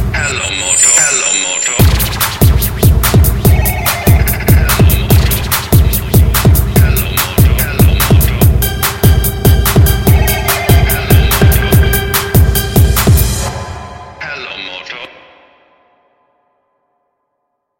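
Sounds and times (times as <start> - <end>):
Motorola trance ringtone: 0.2 - 13.6.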